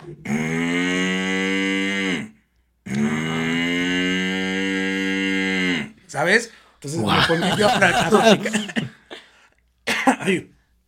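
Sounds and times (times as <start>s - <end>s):
speech: 0.1s - 0.5s, 6.2s - 9.0s, 10.3s - 10.6s
person imitating a cow mooing: 0.1s - 6.0s
laughter: 6.9s - 9.4s.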